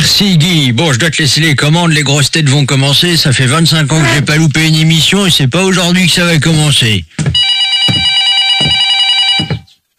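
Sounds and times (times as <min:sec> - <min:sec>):
speech: 0:00.2 - 0:07.4
telephone bell ringing: 0:07.4 - 0:09.7.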